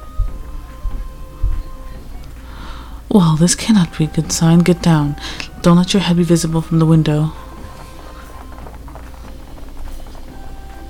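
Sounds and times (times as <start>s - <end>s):
faint hissing background: 0.0s - 10.8s
speech: 3.1s - 7.4s
horse galloping: 3.5s - 10.8s.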